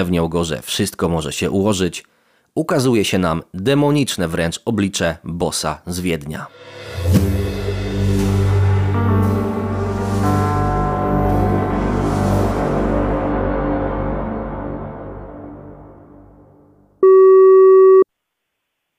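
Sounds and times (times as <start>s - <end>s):
speech: 0.0s - 7.4s
dense resonant musical swell: 6.5s - 16.8s
steady telephone tone: 17.0s - 18.1s.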